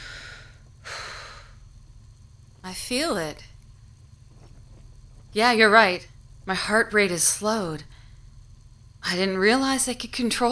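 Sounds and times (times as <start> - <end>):
slow controlled breathing of someone calming down: 0.0 - 1.9, 7.9 - 8.4
steady low hum: 0.0 - 10.5
speech: 2.7 - 3.5, 5.3 - 8.0, 9.0 - 10.5.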